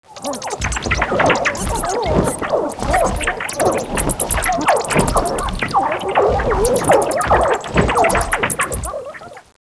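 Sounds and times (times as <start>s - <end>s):
air combat: 0.1s - 9.2s.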